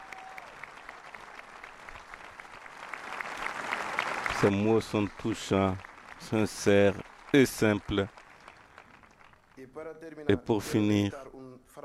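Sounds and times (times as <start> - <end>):
audience applause: 0.0 - 9.7
speech: 4.4 - 8.2, 9.6 - 11.8.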